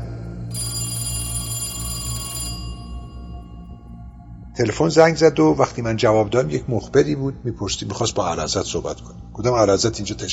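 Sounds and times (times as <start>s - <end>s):
old-fashioned telephone bell ringing: 0.0s - 4.3s
speech: 4.6s - 10.3s.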